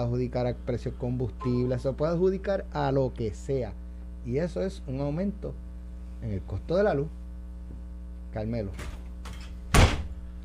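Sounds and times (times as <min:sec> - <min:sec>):
speech: 0:00.0 - 0:07.2, 0:08.4 - 0:09.0
faint hum: 0:00.0 - 0:10.4
heavy door shutting as someone leaves: 0:08.8 - 0:10.2.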